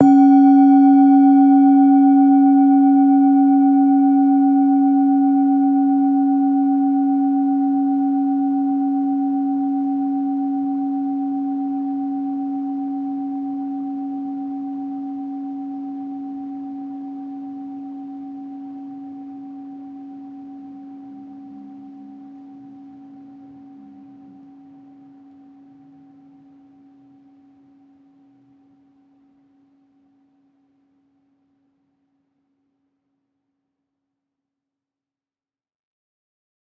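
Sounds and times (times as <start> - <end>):
medium bowl tone C sharp 3: 0.0 - 30.6.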